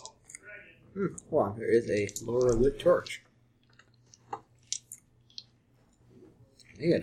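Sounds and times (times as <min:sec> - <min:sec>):
low hum: 0:00.0 - 0:07.0
speech: 0:01.0 - 0:03.3, 0:06.8 - 0:07.0
quiet wet chewing of pepperoni: 0:01.9 - 0:07.0.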